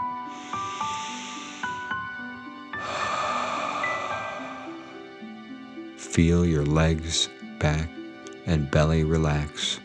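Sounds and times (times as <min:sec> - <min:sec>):
deep breath in through the nose and long airy exhale: 0:00.0 - 0:06.0
gentle music: 0:00.0 - 0:09.8
speech: 0:06.2 - 0:09.8.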